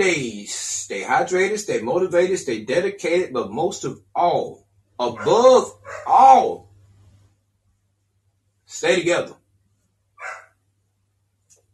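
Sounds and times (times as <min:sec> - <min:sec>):
speech: 0:00.0 - 0:06.7, 0:08.7 - 0:09.4
low steady hum: 0:00.0 - 0:09.3
single sharp dog bark: 0:05.0 - 0:06.3, 0:10.2 - 0:10.5.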